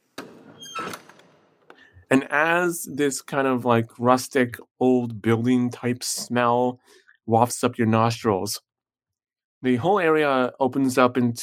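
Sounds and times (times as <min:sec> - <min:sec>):
old door hinges creaking: 0:00.1 - 0:01.7
speech: 0:02.1 - 0:08.7, 0:09.6 - 0:11.4.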